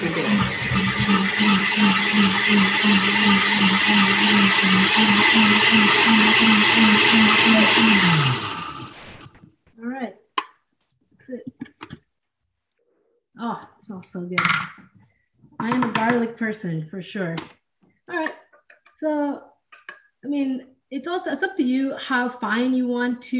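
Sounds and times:
blender with a little water whirring: 0.0s - 9.4s
speech: 1.1s - 8.5s, 13.4s - 15.0s, 15.6s - 18.4s, 19.0s - 19.5s, 20.2s - 23.3s.

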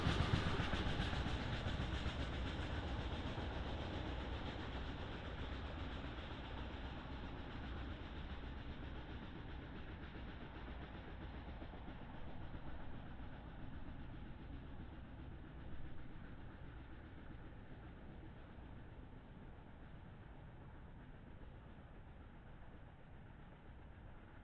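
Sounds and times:
BNSF freight train rumbling past in the Columbia River Gorge: 0.0s - 18.1s
steady rattling clatter of freight train: 0.0s - 24.4s.

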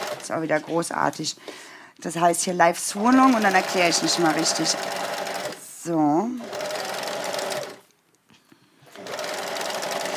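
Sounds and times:
sewing machine stitching: 0.0s - 1.2s, 3.0s - 5.6s, 6.4s - 7.8s, 8.9s - 10.1s
speech: 0.3s - 5.1s, 5.8s - 6.6s.

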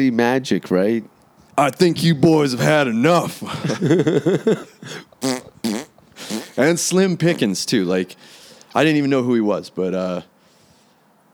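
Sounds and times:
speech: 0.0s - 5.3s, 6.6s - 10.3s
laughter: 2.5s - 5.1s
buzzy fart sounds: 4.8s - 7.7s.

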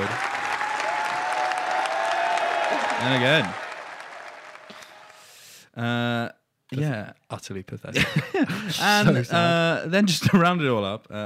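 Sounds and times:
audience applause: 0.0s - 5.4s
speech: 3.0s - 3.6s, 5.8s - 11.2s.

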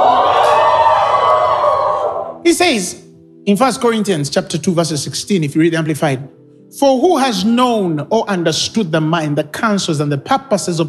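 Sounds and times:
large crowd screaming and cheering: 0.0s - 2.5s
speech: 2.5s - 10.8s.

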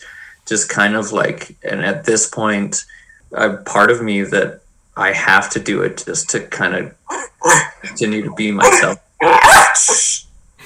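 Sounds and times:
speech: 0.5s - 10.1s
dog barking: 8.7s - 10.0s.

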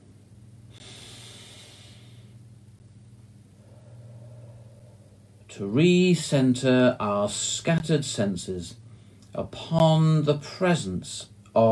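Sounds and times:
steady low hum: 0.0s - 11.7s
slow breathing: 0.7s - 2.6s, 3.4s - 5.5s
speech: 5.5s - 8.8s, 9.4s - 11.7s.

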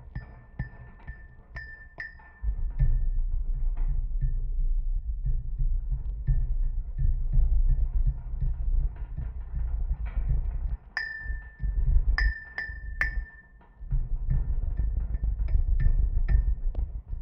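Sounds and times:
steady low rumble: 2.4s - 13.2s, 13.8s - 17.2s
rings on hands striking rusty metal poles of a fish-sampling structure: 11.0s - 11.6s, 12.2s - 13.6s.

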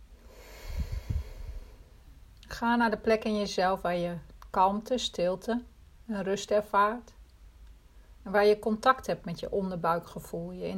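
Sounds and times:
deep breath in and out: 0.2s - 2.0s
speech: 2.6s - 7.2s, 8.2s - 10.7s.

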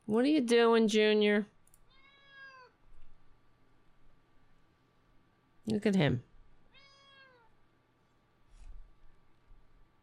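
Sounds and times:
speech: 0.1s - 1.5s, 5.7s - 6.3s
drawn-out whiny cat meow: 1.9s - 2.8s, 6.7s - 7.6s.

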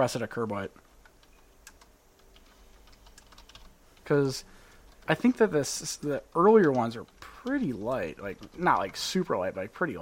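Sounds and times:
speech: 0.0s - 0.9s, 4.1s - 4.5s, 5.1s - 10.0s
keystrokes on a computer keyboard: 1.0s - 3.7s, 6.6s - 9.1s.

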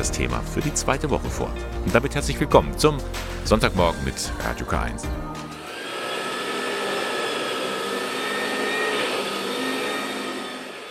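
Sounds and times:
speech: 0.0s - 5.5s
vacuum cleaner running: 5.4s - 10.9s.

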